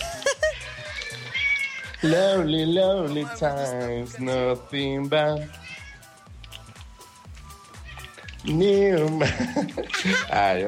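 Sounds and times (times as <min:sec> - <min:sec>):
laughter: 0:00.0 - 0:01.2, 0:09.0 - 0:10.6
kitten meowing: 0:00.3 - 0:02.5, 0:05.4 - 0:06.2, 0:07.8 - 0:08.6
speech: 0:02.0 - 0:05.6, 0:08.4 - 0:10.6.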